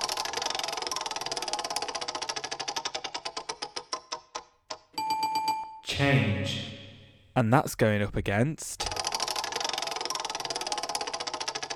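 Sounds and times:
spinning prize wheel ticking: 0.0s - 4.2s, 8.9s - 11.7s
bright ringing chime: 5.0s - 6.0s
speech: 6.0s - 6.7s, 7.4s - 8.8s.

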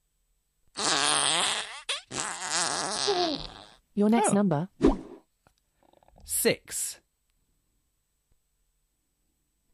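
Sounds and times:
game fart sound effect: 0.8s - 3.8s
speech: 3.1s - 4.9s, 6.4s - 7.0s.

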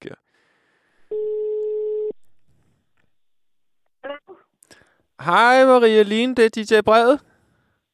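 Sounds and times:
outgoing phone call ringing tone: 1.1s - 2.2s
speech: 5.2s - 7.3s.

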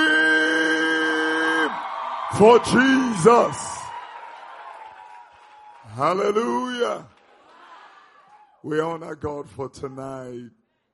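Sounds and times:
long high-pitched yell above the crowd: 0.0s - 3.9s
audience screaming and cheering: 0.0s - 8.6s
speech: 2.3s - 3.7s, 6.0s - 7.1s, 8.6s - 10.6s.

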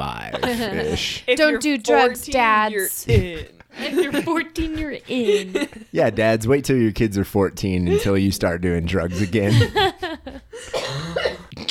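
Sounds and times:
speech: 0.4s - 10.8s
person coughing harshly and wheezily: 10.7s - 11.6s.

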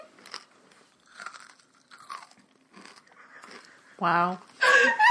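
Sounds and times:
crunching bites into a Butterfinger candy bar: 0.1s - 3.8s
chewing candy bar: 0.1s - 3.9s
speech: 4.0s - 5.0s.

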